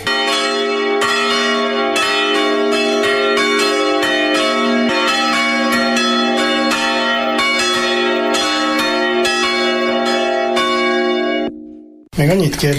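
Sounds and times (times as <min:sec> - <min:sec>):
three church bells ringing, including a historic bell oldest in the area: 0:00.0 - 0:12.1
speech: 0:12.2 - 0:12.7.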